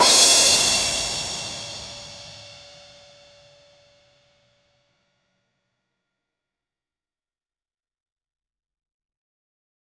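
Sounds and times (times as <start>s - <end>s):
crash cymbal: 0.0s - 3.6s.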